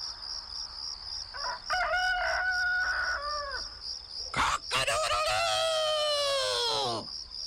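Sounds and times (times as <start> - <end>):
crickets or insects droning: 0.0 - 7.4
rooster crowing: 1.3 - 3.6, 4.4 - 7.0.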